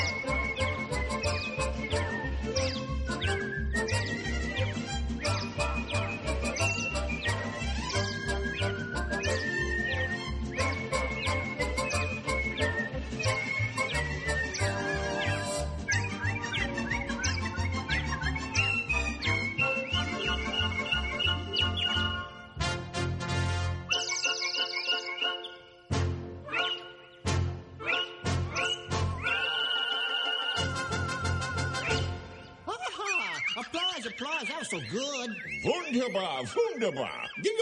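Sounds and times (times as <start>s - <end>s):
chorus of people whistling bird-like chirps in a song: 0.0s - 22.6s, 23.9s - 25.9s, 26.5s - 37.6s
bouncy musical accompaniment: 0.0s - 37.6s
speech: 36.0s - 37.6s.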